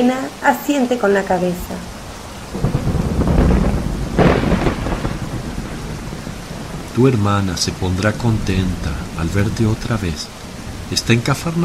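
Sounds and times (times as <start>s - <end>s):
speech: 0.0s - 2.7s, 7.0s - 11.6s
steady rain downpour: 0.0s - 11.6s
deep rumble of thunder: 1.4s - 11.6s.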